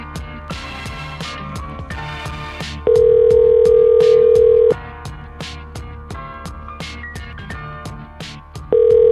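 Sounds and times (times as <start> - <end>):
busy music: 0.0 - 9.1
outgoing phone call ringback tone: 2.9 - 4.8, 8.7 - 9.1.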